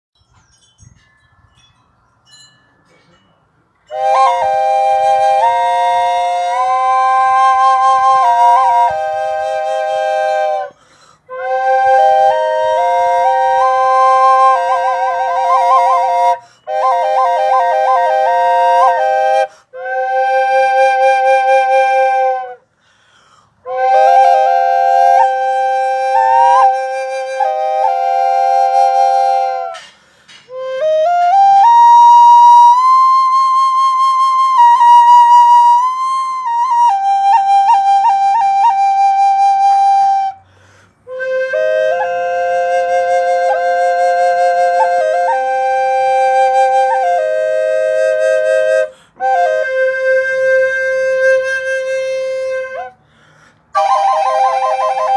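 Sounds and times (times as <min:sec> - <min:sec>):
small triple flute in C minor: 0:03.9 - 0:22.7, 0:23.6 - 0:55.1.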